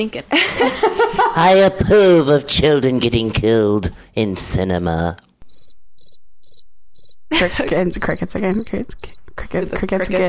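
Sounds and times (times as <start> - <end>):
speech: 0.0 - 5.2, 7.3 - 10.2
laughter: 0.3 - 1.4, 7.3 - 7.9
crickets chirping: 5.4 - 9.2.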